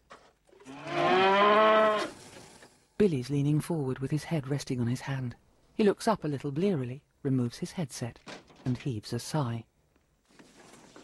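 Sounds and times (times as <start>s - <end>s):
cow mooing beside a tropical runway: 0.6s - 2.2s
speech: 3.0s - 9.7s.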